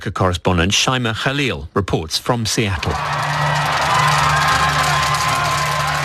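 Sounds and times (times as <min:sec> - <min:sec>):
speech: 0:00.0 - 0:03.4
large crowd of football fans cheering and shouting at a fan zone: 0:02.8 - 0:06.0
football fans whooping: 0:02.9 - 0:06.0.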